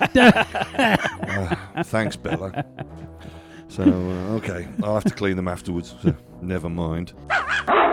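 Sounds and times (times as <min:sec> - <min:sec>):
laughter: 0:00.0 - 0:06.2
speech: 0:00.0 - 0:07.8
pet dog barking: 0:07.3 - 0:07.8.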